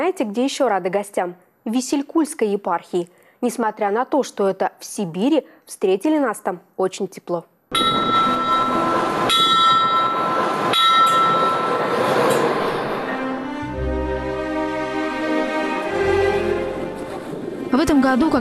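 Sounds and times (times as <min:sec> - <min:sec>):
speech: 0:00.0 - 0:07.5, 0:17.7 - 0:18.3
ringing bell-like tones: 0:07.7 - 0:12.0
sharp metallic clanks of train: 0:07.7 - 0:12.6
special-purpose royal train pulling away from station in Omsk: 0:07.7 - 0:18.3.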